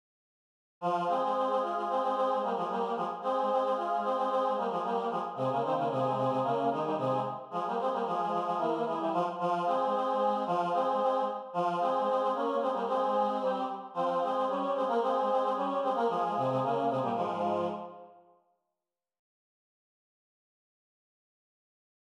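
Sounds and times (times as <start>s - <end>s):
SATB choir singing a sacred song: 0.8s - 18.1s.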